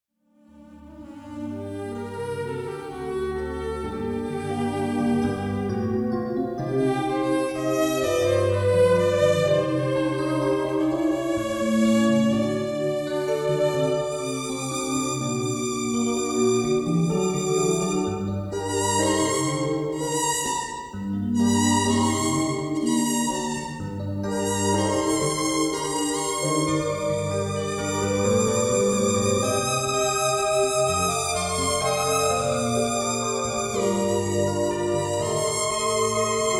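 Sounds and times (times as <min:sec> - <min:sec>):
keys and violin Jewish wedding ceremony music: 0:01.0 - 0:36.5.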